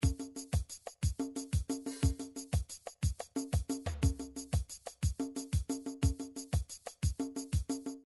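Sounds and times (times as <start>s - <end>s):
African drums: 0.0s - 8.0s.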